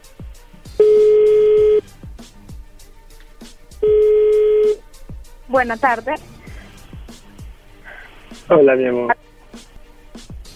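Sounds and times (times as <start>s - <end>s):
telephone tones as a number is dialed: 0.8s - 1.9s, 3.8s - 4.8s
speech: 5.5s - 6.3s, 8.5s - 9.2s.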